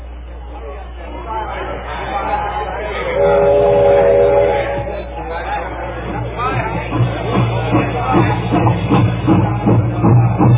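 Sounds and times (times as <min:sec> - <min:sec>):
voices murmuring: 0:00.0 - 0:10.4
passenger train horn blast: 0:03.0 - 0:05.2.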